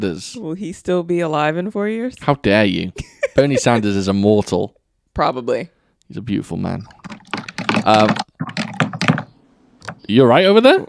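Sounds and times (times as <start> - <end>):
speech: 0.0 - 7.1, 7.9 - 8.2, 10.1 - 10.8
typing on a computer keyboard: 7.0 - 10.0.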